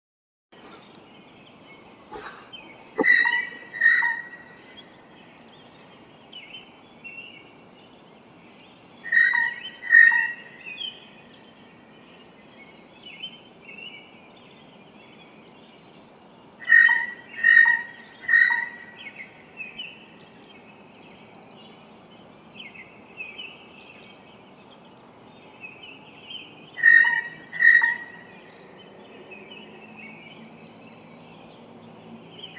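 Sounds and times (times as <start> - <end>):
Blue Jay Cyanocitta cristata calling: 1.6 - 5.5, 9.0 - 11.1, 16.6 - 20.0, 26.8 - 28.5.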